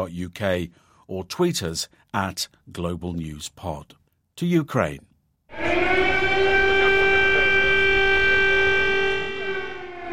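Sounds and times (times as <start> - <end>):
speech: 0.0 - 5.7
air raid siren wailing: 5.5 - 10.1.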